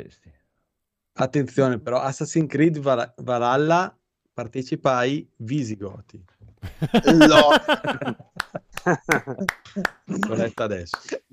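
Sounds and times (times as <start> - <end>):
speech: 0.0 - 0.4, 1.2 - 11.3
laughter: 6.6 - 10.6
hand claps: 8.4 - 11.2.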